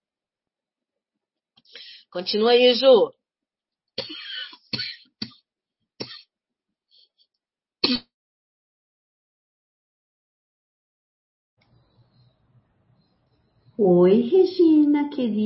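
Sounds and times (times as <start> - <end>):
speech: 2.1 - 3.2, 4.0 - 4.2, 13.8 - 15.4
person coughing: 4.0 - 5.4, 6.0 - 6.3, 7.8 - 8.1
person clearing throat: 6.0 - 6.3, 7.8 - 8.1.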